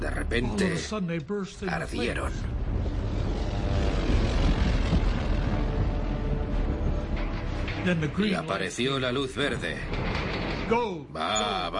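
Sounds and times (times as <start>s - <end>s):
speech: 0.3s - 2.6s, 7.8s - 11.7s
propeller aircraft engines droning overhead: 2.3s - 7.9s.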